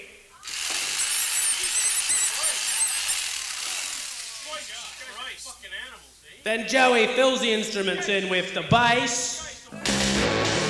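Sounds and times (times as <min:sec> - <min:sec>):
power drill whirring: 0:00.4 - 0:05.1
speech: 0:05.4 - 0:09.4.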